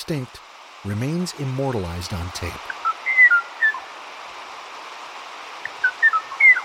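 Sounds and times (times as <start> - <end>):
steady hiss: 0.0 - 6.6
speech: 0.1 - 2.8
Kauai O'o singing short clear whistled notes: 2.8 - 3.8, 5.6 - 6.6.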